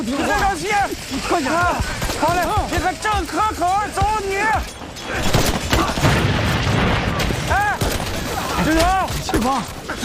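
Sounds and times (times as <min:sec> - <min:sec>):
people shouting: 0:00.0 - 0:06.2, 0:07.2 - 0:10.0
speech: 0:01.3 - 0:06.0, 0:08.6 - 0:10.0
grenade explosion: 0:05.2 - 0:09.4.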